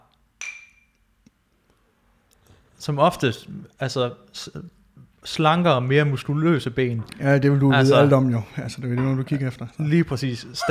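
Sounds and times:
two glasses clinking in a toast: 0.4 - 1.0
speech: 2.8 - 10.6.

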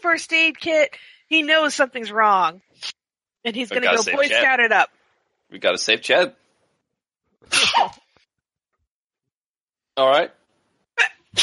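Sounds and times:
speech: 0.0 - 6.4, 7.4 - 8.0, 10.0 - 10.4
person sneezing: 7.5 - 8.0, 11.0 - 11.4.

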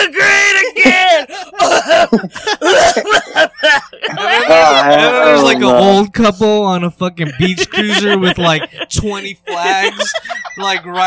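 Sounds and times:
laughter: 0.6 - 6.0, 7.2 - 11.0
loud raspy coughing: 1.3 - 4.5
speech: 2.1 - 2.7, 4.5 - 11.0.

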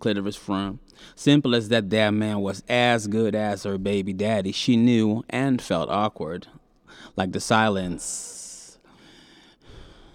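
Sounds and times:
speech: 0.0 - 8.4
man breathing heavily with rasping gasps: 8.8 - 10.1.

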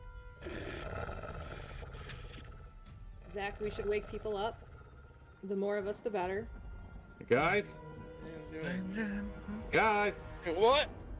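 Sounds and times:
wolf snarling with a rough sustained growl: 0.4 - 5.4
speech: 3.4 - 4.7, 5.4 - 6.6, 7.2 - 11.0.

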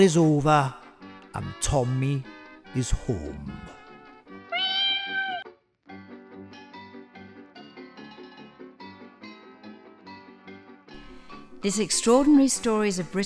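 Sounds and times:
speech: 0.0 - 0.8, 1.4 - 3.8, 11.6 - 13.2
cat meowing: 4.4 - 5.5.

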